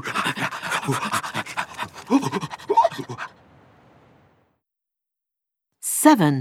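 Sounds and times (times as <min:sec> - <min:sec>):
several sled dogs panting while running: 0:00.0 - 0:03.4
speech: 0:00.9 - 0:01.2, 0:06.0 - 0:06.3.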